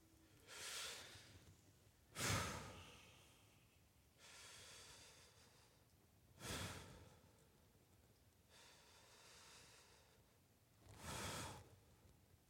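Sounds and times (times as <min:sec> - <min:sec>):
deep slow breaths: 0:00.4 - 0:01.5, 0:02.1 - 0:07.4, 0:08.5 - 0:12.0.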